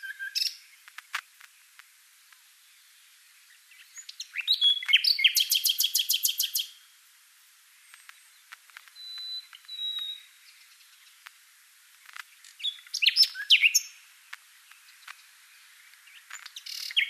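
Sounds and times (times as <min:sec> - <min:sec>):
Common nightingale Luscinia megarhynchos singing: 0:00.0 - 0:00.9, 0:02.6 - 0:06.9, 0:07.8 - 0:11.3, 0:12.3 - 0:14.1, 0:14.7 - 0:17.0.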